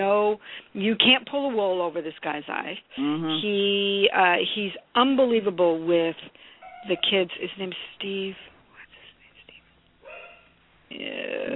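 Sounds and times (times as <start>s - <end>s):
speech: 0.0s - 8.5s, 10.9s - 11.5s
voice murmuring: 3.0s - 3.5s
dog barking faintly in a short yelping burst: 6.6s - 7.3s, 10.0s - 10.6s.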